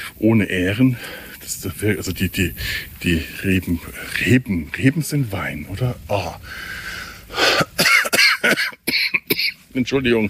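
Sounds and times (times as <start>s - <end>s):
speech: 0.2s - 7.6s, 9.8s - 10.2s
person with a cold coughing: 7.5s - 9.6s.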